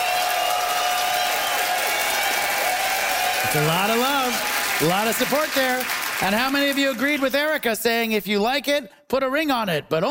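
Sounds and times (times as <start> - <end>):
faint cheers from studio audience: 0.0 - 5.8
studio audience clapping: 0.0 - 8.0
speech: 3.5 - 10.0.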